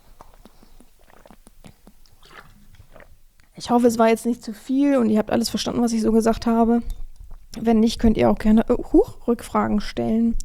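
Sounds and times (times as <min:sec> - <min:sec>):
person sipping drinking water with short gulps and swallowing: 0:00.0 - 0:03.6, 0:06.8 - 0:07.6
speech: 0:03.6 - 0:07.0, 0:07.6 - 0:10.4.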